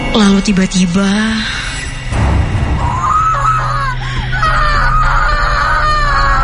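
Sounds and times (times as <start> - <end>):
speech: 0.1 - 1.6
loud wavering screams at a haunted house attraction: 2.8 - 6.4.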